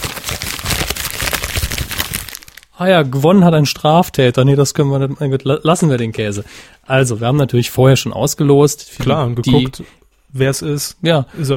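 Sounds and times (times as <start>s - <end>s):
paper crumpling and rustling: 0.0s - 2.7s
speech: 2.8s - 11.5s.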